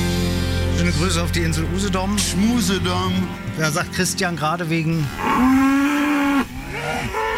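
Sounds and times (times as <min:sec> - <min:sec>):
speech: 0:00.8 - 0:05.8
escaped cows mooing on a road: 0:04.9 - 0:07.3.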